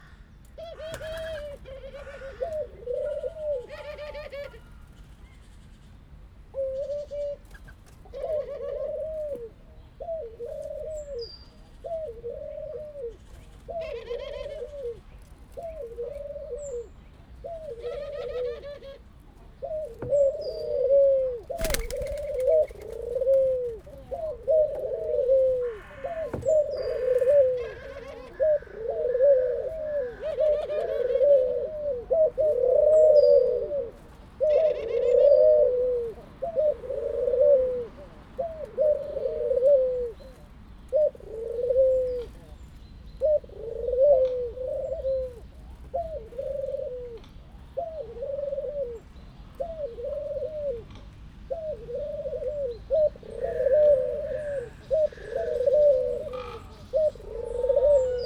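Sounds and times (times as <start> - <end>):
laughing dove calling in a zoo: 0.0 - 5.2, 6.5 - 58.2
laughing dove wing flap: 21.6 - 22.9.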